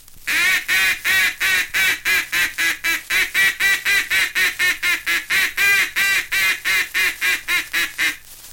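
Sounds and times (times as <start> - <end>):
duck call simulating mallard hens quacking: 0.3 - 8.2.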